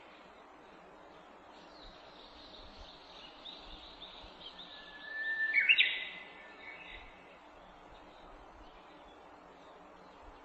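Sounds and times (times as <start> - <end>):
soft background hiss: 0.0 - 10.4
Japanese bush warbler whistling song with fluttering flourish: 3.4 - 7.1.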